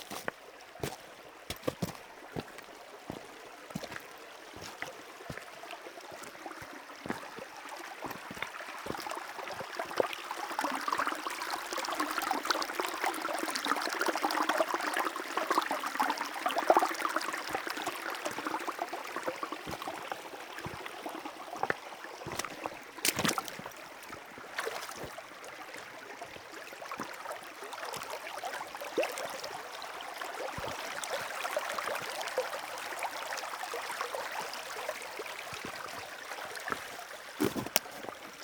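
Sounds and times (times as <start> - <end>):
footsteps on pebbles: 0.0 - 5.5, 19.7 - 20.0, 21.6 - 23.8, 35.6 - 38.4
river flowing: 0.0 - 38.4
pebbles shifting and clicking underfoot: 36.7 - 38.4.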